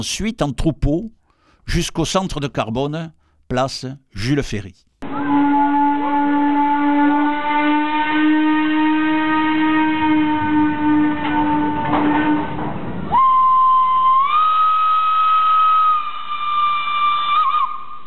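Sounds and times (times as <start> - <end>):
speech: 0.0 - 4.9
steam train whistle of a small local train in south-western France: 5.0 - 18.0.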